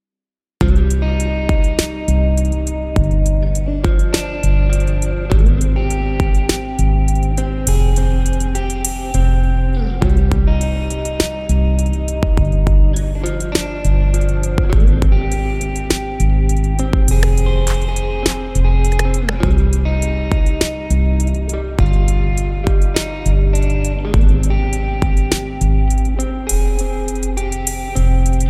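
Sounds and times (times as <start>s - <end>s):
drums: 0.6s - 2.0s, 3.0s - 4.4s, 5.3s - 6.8s, 10.0s - 10.6s, 12.2s - 13.8s, 14.6s - 20.8s, 22.7s - 23.2s, 24.2s - 25.6s
guitar: 0.6s - 28.4s.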